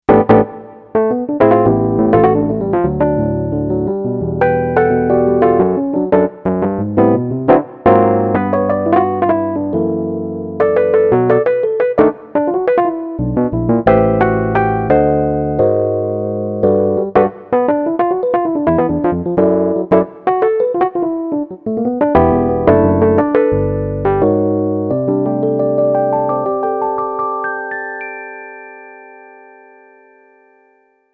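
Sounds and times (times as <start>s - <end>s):
piano: 0.0s - 31.1s.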